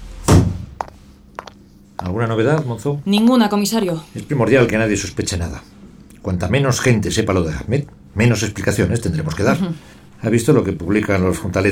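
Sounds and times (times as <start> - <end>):
door swinging shut with a heavy thud: 0.2 - 0.7
speech: 2.1 - 11.7.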